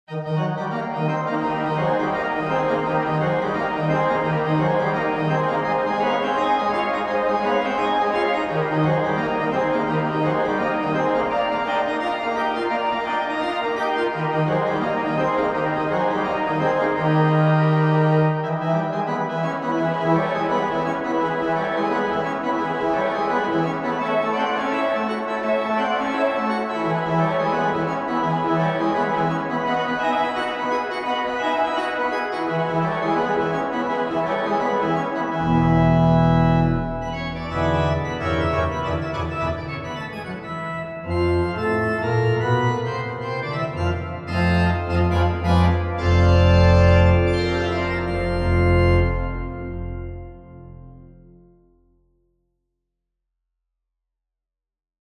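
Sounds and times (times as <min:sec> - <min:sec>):
organ playing boogie: 0:00.2 - 0:51.4.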